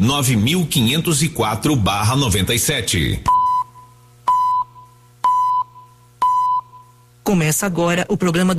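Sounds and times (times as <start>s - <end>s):
speech: 0.0s - 3.4s, 7.3s - 8.5s
low continuous hum: 0.0s - 8.5s
countdown beeps before an electoral broadcast network link-up: 3.3s - 7.0s.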